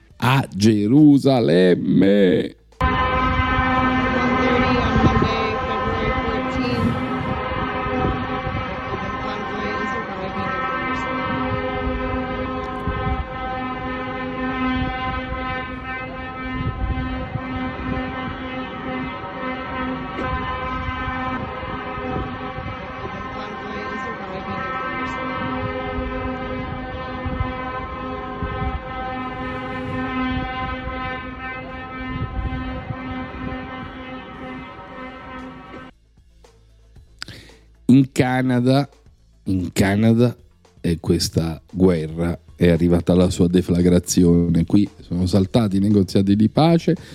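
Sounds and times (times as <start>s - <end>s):
speech: 0.2s - 2.6s, 38.0s - 47.1s
many truck horns from a convoy blaring: 2.8s - 35.9s.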